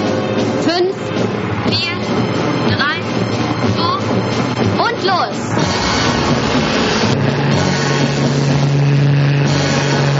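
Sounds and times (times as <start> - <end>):
low-flying airplanes roaring overhead while spraying gas over troops: 0.0 - 10.1
low humming tone: 5.4 - 10.1.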